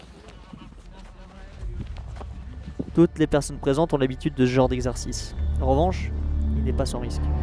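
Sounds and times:
young horse hooves thudding and scuffing on the ground while being hobbled: 0:00.0 - 0:03.0
voices of men: 0:00.0 - 0:05.9
speech: 0:03.0 - 0:07.3.

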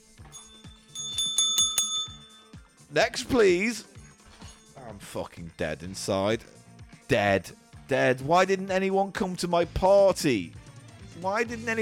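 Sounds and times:
hand bell ringing: 0:00.2 - 0:02.8
speech: 0:02.9 - 0:03.9, 0:04.9 - 0:10.6, 0:11.2 - 0:11.8.

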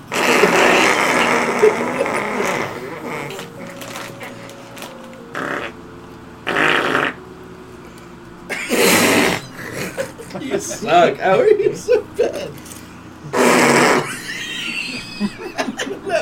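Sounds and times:
person blowing a raspberry imitating a fart: 0:00.0 - 0:07.2, 0:08.5 - 0:09.9, 0:13.3 - 0:14.2
breathy noise: 0:00.0 - 0:10.4
laughter: 0:00.3 - 0:04.2, 0:08.5 - 0:12.6, 0:13.3 - 0:16.2
speech: 0:11.0 - 0:12.6.

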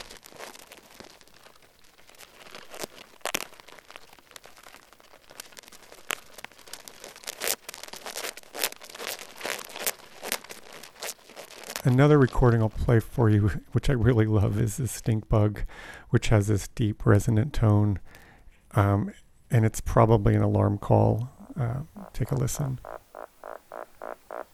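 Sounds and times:
ants on a leaf attacking tape holding down a microphone: 0:00.0 - 0:13.0, 0:21.4 - 0:24.5
speech: 0:11.8 - 0:18.2, 0:18.8 - 0:23.0.

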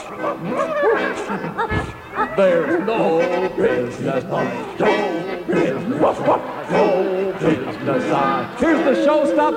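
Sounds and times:
several dogs barking, yipping and yelping: 0:00.0 - 0:08.2
busy noise: 0:00.0 - 0:09.5
laughter: 0:00.0 - 0:09.5
speech: 0:00.1 - 0:09.5.

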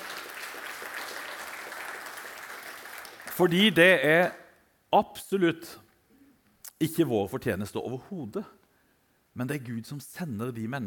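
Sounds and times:
crowd clapping: 0:00.0 - 0:03.8
speech: 0:03.4 - 0:05.8, 0:06.8 - 0:08.6, 0:09.4 - 0:10.8.

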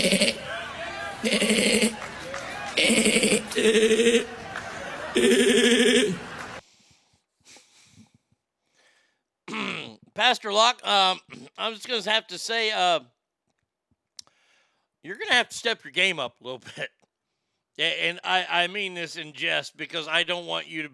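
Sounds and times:
sheep bleating: 0:00.0 - 0:00.5, 0:01.2 - 0:02.0, 0:02.8 - 0:04.3
laughter: 0:00.0 - 0:06.6
speech: 0:03.6 - 0:04.4, 0:05.2 - 0:06.2, 0:10.4 - 0:13.2, 0:15.0 - 0:17.0, 0:17.8 - 0:20.9.

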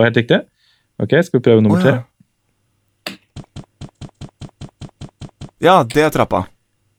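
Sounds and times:
speech: 0:00.0 - 0:02.1, 0:05.6 - 0:06.5
video game footsteps pattering: 0:03.1 - 0:06.5.

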